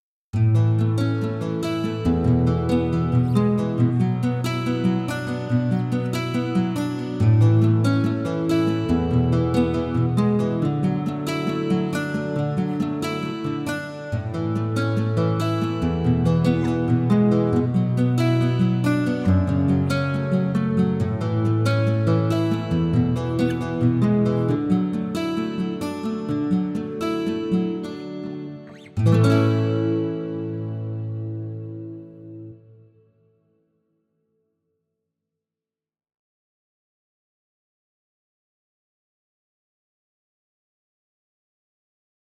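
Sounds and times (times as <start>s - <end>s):
combination of three nylon strings: 0.4s - 32.6s.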